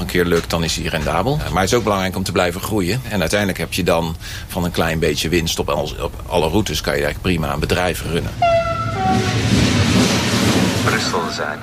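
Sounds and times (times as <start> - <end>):
speech: 0.2 - 9.3, 10.9 - 11.6
train rumbling into station: 5.9 - 11.6.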